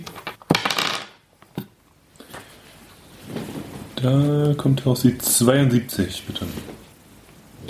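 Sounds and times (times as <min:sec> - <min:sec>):
d100 die tossed and rattling on a table: 0:00.1 - 0:01.2
speech: 0:04.0 - 0:06.8.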